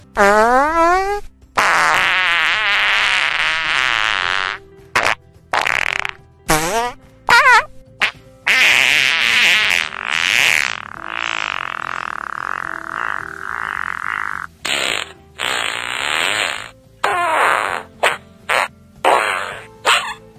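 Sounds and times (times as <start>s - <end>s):
fart: 0.0s - 20.3s.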